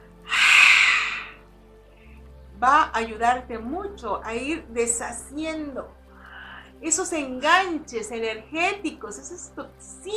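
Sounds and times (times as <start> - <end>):
deep forceful exhalation in a breathing exercise: 0.3 - 1.4
speech: 2.6 - 6.0, 6.8 - 10.1.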